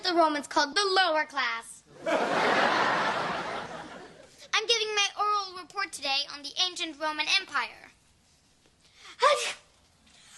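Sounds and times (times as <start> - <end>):
speech: 0.1 - 3.1, 5.6 - 7.9, 9.2 - 9.6
laughter: 2.0 - 4.3
sneezing: 9.2 - 9.7.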